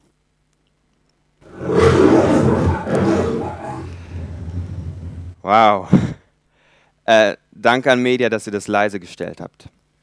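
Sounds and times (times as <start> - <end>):
lion roaring with deep roar and rumbling grunts: 1.4 - 5.4
speech: 5.5 - 6.1, 7.1 - 9.8.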